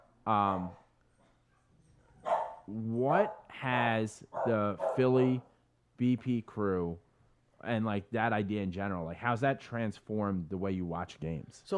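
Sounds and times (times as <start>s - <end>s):
speech: 0.2s - 0.8s, 2.7s - 7.0s, 7.6s - 11.7s
dog barking: 1.5s - 3.5s, 4.3s - 5.4s.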